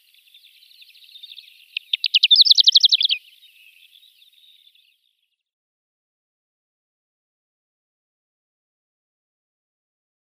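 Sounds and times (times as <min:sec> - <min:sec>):
greater short-toed lark twittering: 0:00.0 - 0:05.0
soft continuous background chatter: 0:00.0 - 0:05.4.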